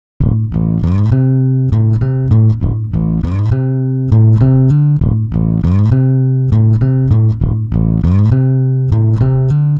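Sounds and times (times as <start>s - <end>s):
pitch-shifted bass: 0.2s - 9.7s.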